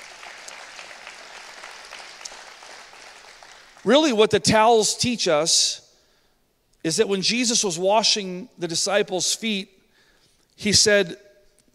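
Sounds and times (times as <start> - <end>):
audience applauding: 0.0 - 4.0
speech: 3.8 - 5.8, 6.8 - 9.8, 10.6 - 11.3.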